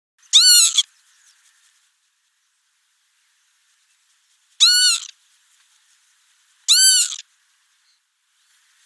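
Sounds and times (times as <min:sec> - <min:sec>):
Northern Lapwing calling with brief husky arched notes: 0:00.2 - 0:01.8, 0:04.6 - 0:05.2, 0:06.0 - 0:08.0.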